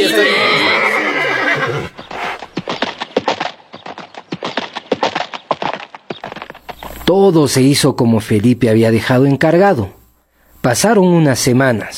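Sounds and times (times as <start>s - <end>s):
horse neighing: 0.0s - 2.4s
horse hooves clip-clopping on a hard surface: 1.9s - 7.2s
speech: 7.1s - 10.0s, 10.6s - 11.9s.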